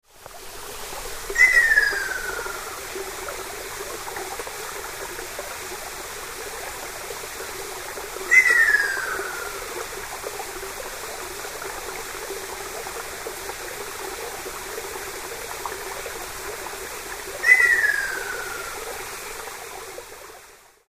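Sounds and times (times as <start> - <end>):
Ryukyu ruddy kingfisher call: 1.4 - 2.8, 8.3 - 9.7, 17.4 - 18.9.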